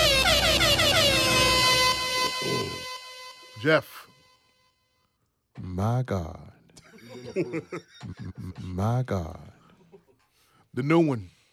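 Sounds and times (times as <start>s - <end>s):
air horn blaring: 0.0s - 4.7s
speech: 3.6s - 4.1s, 5.6s - 6.6s, 7.2s - 9.6s, 10.8s - 11.4s
laughter: 6.8s - 8.7s.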